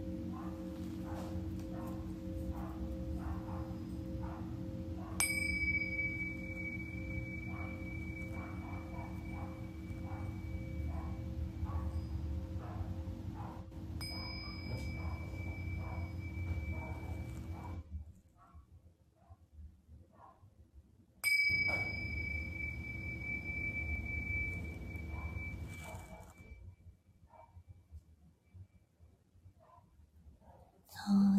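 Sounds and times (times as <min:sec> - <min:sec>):
singing bowl struck and ringing: 0:00.0 - 0:17.8, 0:21.2 - 0:26.7
low droning hum: 0:00.0 - 0:18.1, 0:21.3 - 0:26.6.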